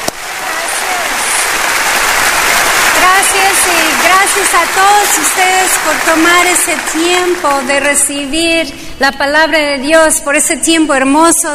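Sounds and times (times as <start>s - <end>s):
audience giving welcoming applause: 0.0s - 8.4s
speech: 3.7s - 11.5s.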